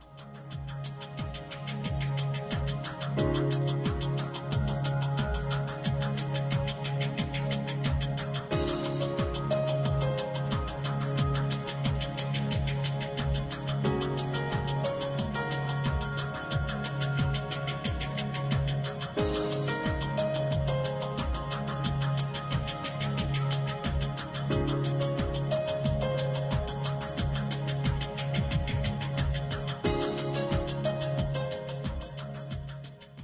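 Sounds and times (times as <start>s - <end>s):
corporate music: 0.0s - 33.2s.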